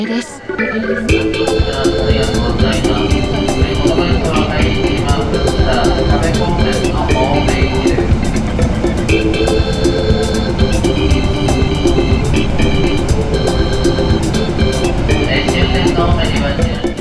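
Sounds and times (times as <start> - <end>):
speech: 0.0 - 3.4
train car rumbling along the tracks: 0.4 - 16.9.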